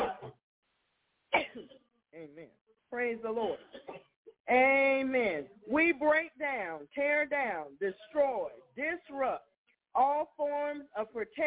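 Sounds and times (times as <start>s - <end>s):
person coughing harshly: 0.0s - 0.4s, 1.4s - 1.8s
speech: 2.2s - 11.4s.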